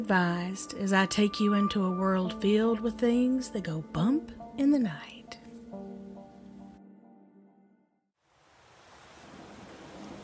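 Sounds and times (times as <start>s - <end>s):
low sustained musical drone: 0.0s - 4.6s
speech: 0.0s - 5.2s
heavy rain pouring: 8.2s - 10.2s.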